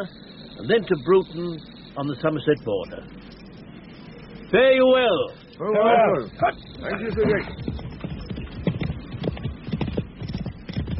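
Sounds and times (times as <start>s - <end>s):
speech: 0.0s - 3.3s, 4.5s - 7.6s
horse hooves clip-clopping while riding across a dun-coloured plain: 6.4s - 10.9s.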